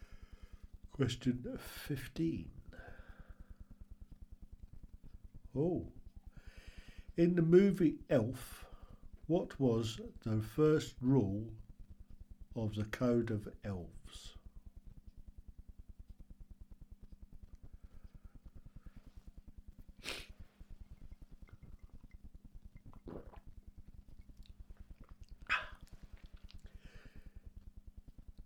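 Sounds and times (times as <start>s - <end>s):
steady low electrical hum: 0.0s - 28.4s
speech: 1.0s - 2.6s, 5.6s - 6.0s, 7.2s - 8.7s, 9.3s - 11.6s, 12.6s - 14.4s
person sneezing: 25.5s - 25.8s
soft breathy huffs: 25.5s - 27.4s.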